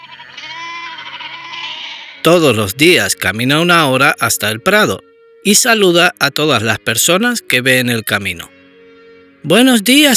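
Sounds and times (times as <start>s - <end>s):
goats bleating in a meadow: 0.0s - 2.3s
speech: 2.2s - 8.6s, 9.4s - 10.1s.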